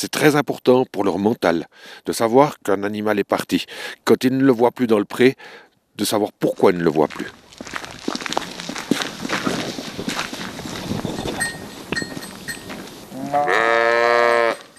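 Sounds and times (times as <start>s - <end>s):
speech: 0.0s - 7.8s
goats and sheep hooves and bodies knocking in a farm pen: 6.6s - 13.6s, 14.2s - 14.7s
goat or sheep bleating loudly: 13.1s - 14.7s.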